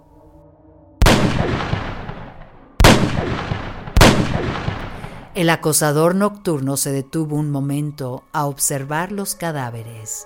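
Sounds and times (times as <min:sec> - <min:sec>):
.22 pistol gunshots: 0:01.0 - 0:05.4
speech: 0:05.4 - 0:10.2.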